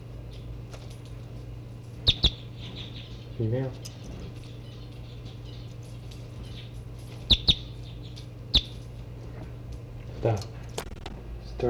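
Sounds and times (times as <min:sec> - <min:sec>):
birds chirping: 0:00.0 - 0:11.6
speech: 0:03.4 - 0:03.9, 0:10.2 - 0:10.5.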